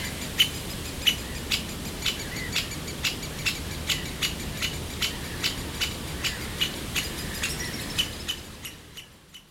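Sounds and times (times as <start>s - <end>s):
bird ticking alarm notes: 0.0s - 9.4s.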